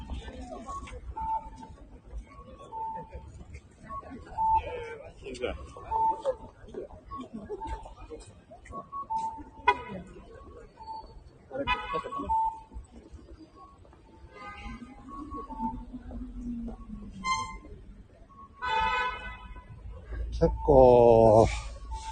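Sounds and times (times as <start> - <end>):
steady city traffic rumble: 0.0 - 22.1
speech: 5.4 - 5.8
car horns honking on a busy city street: 11.6 - 12.4, 17.2 - 17.8, 18.6 - 19.8.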